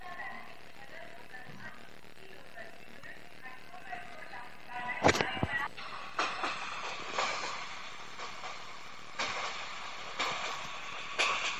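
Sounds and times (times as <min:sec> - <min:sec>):
passenger train rumbling at a railway station: 0:05.5 - 0:11.5.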